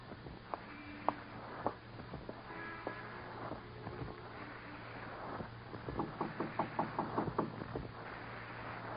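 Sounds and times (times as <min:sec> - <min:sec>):
steady low hum: 0:00.0 - 0:08.9
wind-like noise: 0:00.0 - 0:08.9
knocking on a door in a vestibule: 0:05.9 - 0:07.6.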